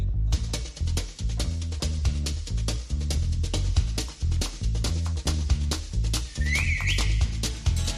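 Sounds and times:
full band playing a steady punchy beat: 0.4s - 7.9s
whistled melody: 6.3s - 7.5s.

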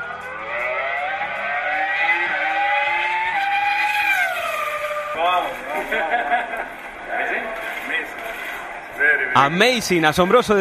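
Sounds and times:
2005 Renault R25 Formula 1 car engine screaming in Abu Dhabi: 0.1s - 5.9s
speech: 5.2s - 8.2s, 9.0s - 10.5s
laughter: 5.3s - 8.2s.

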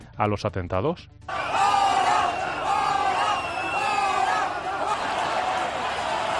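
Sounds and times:
speech: 0.2s - 1.4s
large crowd booing and shouting at a demonstration: 1.3s - 6.3s.

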